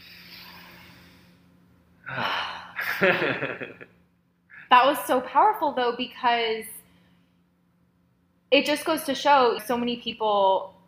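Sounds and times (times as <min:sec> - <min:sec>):
person taking a deep breath during breathwork: 0:00.0 - 0:03.0
laughter: 0:02.8 - 0:03.8
speech: 0:03.0 - 0:04.1, 0:04.7 - 0:06.8, 0:08.5 - 0:10.8.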